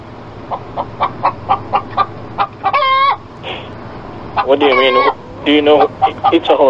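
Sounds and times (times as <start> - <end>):
chickens clucking in a hotel room: 0.4 - 6.6
chicken crowing squawk in a hotel room: 0.5 - 3.3, 4.3 - 6.6
speech: 4.5 - 6.6.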